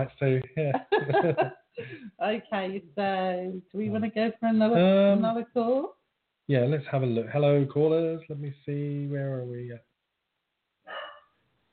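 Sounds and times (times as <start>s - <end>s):
speech: 0.0s - 9.9s
laughter: 0.3s - 2.0s
dog barking: 10.9s - 11.4s.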